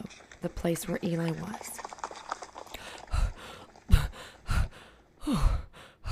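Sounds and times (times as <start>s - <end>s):
speech: 0.1s - 1.8s
man gasping and panting after running back from a battle: 2.8s - 6.1s.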